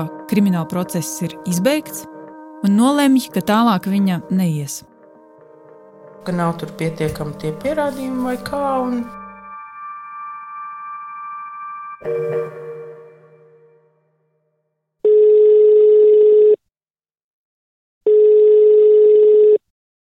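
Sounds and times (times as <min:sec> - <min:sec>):
speech: 0:00.0 - 0:04.9, 0:06.2 - 0:09.2, 0:12.0 - 0:12.5
telephone ringback tones of a call to an immunologist: 0:15.1 - 0:16.6, 0:18.1 - 0:19.6.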